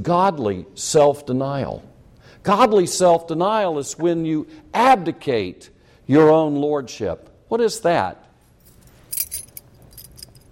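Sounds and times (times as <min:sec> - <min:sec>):
speech: 0:00.0 - 0:08.2
bunch of keys with a car key jangling: 0:08.6 - 0:10.5.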